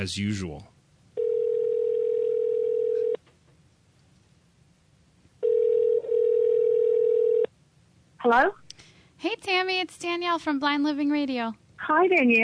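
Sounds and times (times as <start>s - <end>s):
speech: 0.0s - 0.7s, 8.2s - 8.6s, 9.2s - 12.4s
telephone dial tone while calling out: 1.2s - 3.2s, 5.4s - 7.5s.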